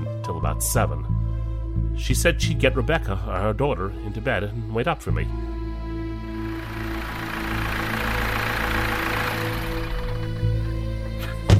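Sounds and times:
speech: 0:00.3 - 0:01.2, 0:02.0 - 0:05.6
car engine idling in a driveway: 0:05.3 - 0:11.5.

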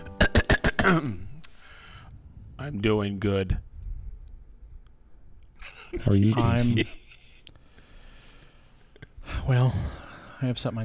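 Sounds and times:
person clearing their throat with rasping bursts: 0:00.2 - 0:01.4
speech: 0:00.9 - 0:01.2, 0:02.6 - 0:03.7, 0:05.9 - 0:07.0, 0:09.5 - 0:10.8.

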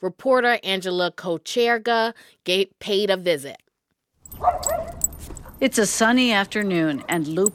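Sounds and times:
speech: 0:00.0 - 0:03.6, 0:05.6 - 0:07.5
faint outdoor noise in a quiet neighborhood: 0:04.2 - 0:07.5
miniature white poodle yipping and barking on a walk: 0:04.3 - 0:05.4.

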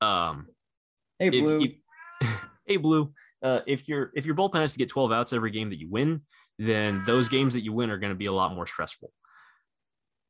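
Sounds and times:
speech: 0:01.2 - 0:09.2
cat meowing: 0:01.4 - 0:02.6, 0:06.8 - 0:07.6.

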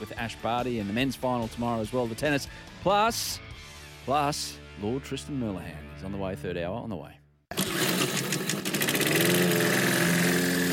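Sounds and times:
speech: 0:00.0 - 0:07.6
lawn mower engine starting and running: 0:07.5 - 0:10.7.

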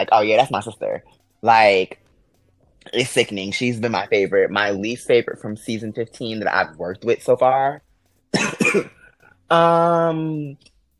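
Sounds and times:
speech: 0:00.0 - 0:02.0, 0:02.8 - 0:10.7
rasping throat clearing: 0:08.4 - 0:09.2.

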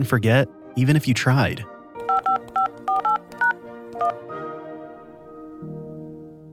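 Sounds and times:
speech: 0:00.0 - 0:01.7
push-button telephone DTMF dialing tones: 0:02.0 - 0:04.2.

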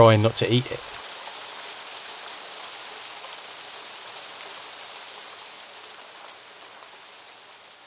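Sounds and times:
speech: 0:00.0 - 0:00.9
steady rain drumming on a plastic surface: 0:00.0 - 0:07.8.

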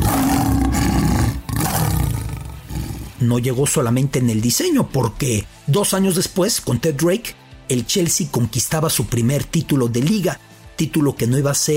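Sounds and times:
lion roaring: 0:00.0 - 0:03.2
speech: 0:03.2 - 0:11.7.

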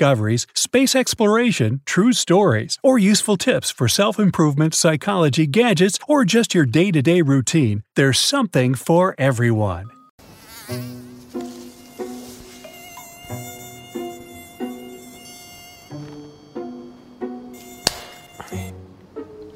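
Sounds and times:
speech: 0:00.0 - 0:10.0, 0:10.7 - 0:11.0
mosquito buzzing: 0:10.2 - 0:18.9.

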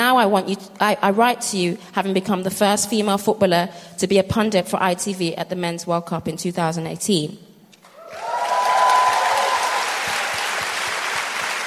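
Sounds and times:
speech: 0:00.2 - 0:07.5
audience applauding: 0:07.8 - 0:11.6
faint cheer or whoop from a crowd: 0:07.8 - 0:11.6.

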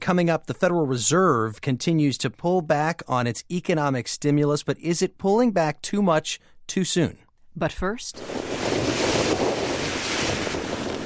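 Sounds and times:
speech: 0:00.1 - 0:08.7
wind and water waves in flooded Pensacola, Florida: 0:08.1 - 0:11.0.

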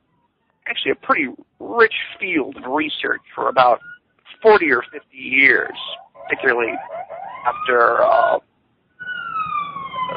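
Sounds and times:
speech: 0:00.8 - 0:08.5
siren wailing outdoors in New York: 0:01.8 - 0:08.4, 0:09.0 - 0:10.1.

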